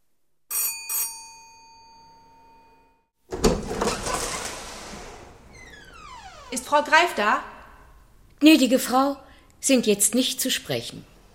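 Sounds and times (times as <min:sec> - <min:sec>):
doorbell chime: 0:00.5 - 0:03.1
rustling and clattering: 0:03.3 - 0:05.5
speech: 0:06.5 - 0:07.5, 0:08.4 - 0:11.1.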